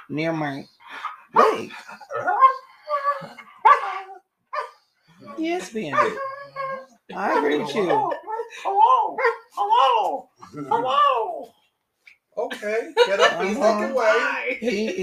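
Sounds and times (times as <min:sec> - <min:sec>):
speech: 0:00.1 - 0:03.4, 0:05.4 - 0:06.3, 0:07.2 - 0:11.3, 0:12.4 - 0:15.0
dog barking: 0:01.4 - 0:01.7, 0:03.6 - 0:04.8, 0:05.9 - 0:06.2, 0:09.2 - 0:09.5
dog whining and yipping: 0:02.0 - 0:11.4
laughter: 0:07.2 - 0:08.8, 0:12.5 - 0:15.0.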